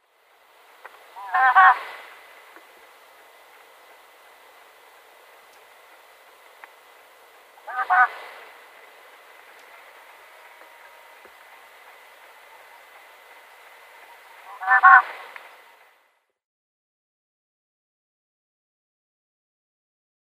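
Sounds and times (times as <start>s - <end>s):
male Marsh Owl display call: 0.8s - 2.9s, 6.9s - 15.7s.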